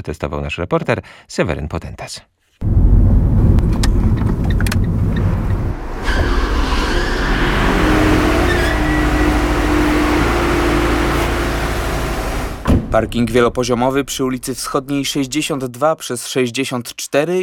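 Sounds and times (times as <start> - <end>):
speech: 0.0 - 2.8, 12.9 - 17.4
car engine rumbling while driving up into a multi-storey car park: 2.6 - 15.6.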